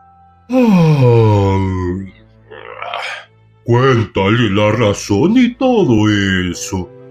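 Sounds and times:
person acting out a long loud yawn: 0.5 - 1.9, 2.5 - 3.3
speech: 0.5 - 2.1, 3.7 - 7.0.

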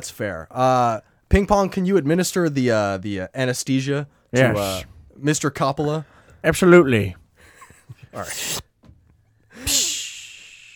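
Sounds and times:
speech: 0.0 - 7.2, 8.1 - 8.7, 9.6 - 9.9
person blowing a forceful breath into another person's mouth: 8.2 - 8.7, 9.6 - 10.7
person making a brief voiced intake of breath: 9.5 - 10.7.

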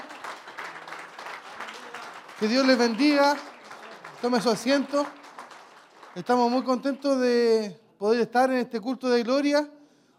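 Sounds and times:
large church audience applauding during a worship service: 0.0 - 7.5
speech: 2.4 - 3.5, 4.2 - 5.2, 6.2 - 9.8.

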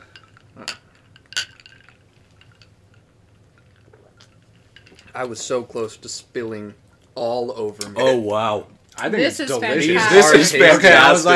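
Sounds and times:
glasses of layered pink fruity drink clinking in a toast: 0.0 - 2.7
speech: 0.6 - 0.8, 5.2 - 11.3.

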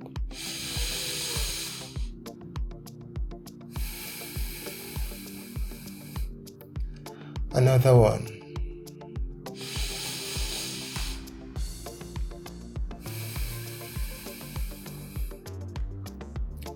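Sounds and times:
steady ticking rhythmic beat: 0.0 - 16.7
slow airy breaths in and out: 0.3 - 2.4, 3.6 - 7.5, 9.5 - 15.7
speech: 7.6 - 8.4.

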